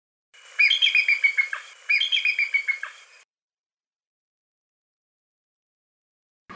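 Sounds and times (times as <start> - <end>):
bald eagle chatter: 0.5 - 3.2.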